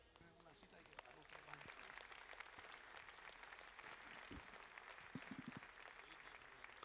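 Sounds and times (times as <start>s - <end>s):
large crowd applauding in a reverberant hall: 0.0s - 6.8s
speech: 0.5s - 2.0s.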